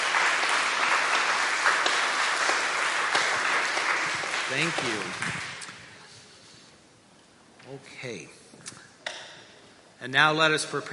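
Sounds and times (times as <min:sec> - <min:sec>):
room full of people applauding: 0:00.0 - 0:05.8
speech: 0:04.5 - 0:05.5, 0:07.7 - 0:08.4, 0:10.0 - 0:10.9.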